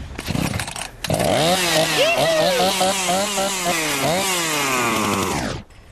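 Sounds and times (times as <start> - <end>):
lawnmower engine starting and running: 0.2 - 5.9.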